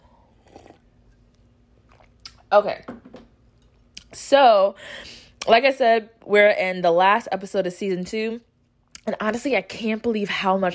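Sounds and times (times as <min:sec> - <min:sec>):
slurp of coffee: 0:00.2 - 0:00.9
speech: 0:02.5 - 0:03.0, 0:04.1 - 0:10.7.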